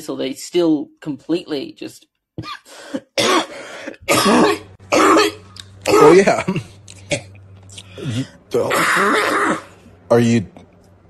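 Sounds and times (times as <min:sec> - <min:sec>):
speech: 0:00.0 - 0:07.2, 0:08.0 - 0:10.6
harsh coughing fit: 0:02.4 - 0:07.4, 0:08.0 - 0:09.7.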